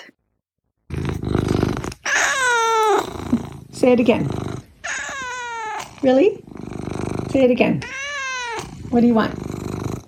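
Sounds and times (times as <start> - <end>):
pet domestic cat growling: 0.9 - 10.0
pet domestic cat meowing: 2.0 - 3.1, 4.8 - 6.0, 7.8 - 8.8
speech: 3.8 - 4.6, 6.0 - 6.5, 7.4 - 8.0, 8.9 - 9.4.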